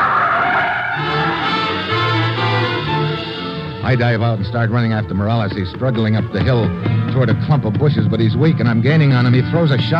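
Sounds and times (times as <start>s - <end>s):
car tires screeching against the road: 0.0s - 3.8s
speech: 3.9s - 9.9s.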